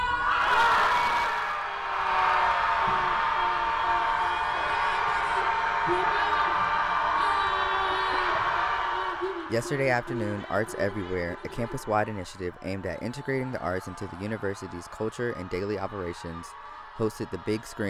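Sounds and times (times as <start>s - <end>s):
whoops and shouts: 0.0s - 9.6s
crowd of people screaming together: 0.0s - 17.8s
speech: 9.5s - 17.8s.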